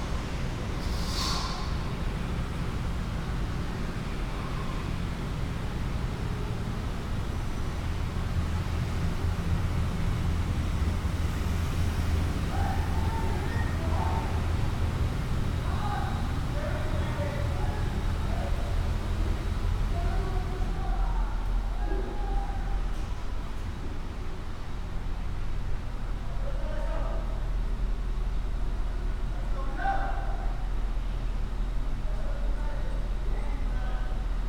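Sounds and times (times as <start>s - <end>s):
constant low rumble of construction machinery in a building: 0.0s - 34.4s
scattered voices: 12.3s - 23.4s, 25.9s - 34.4s.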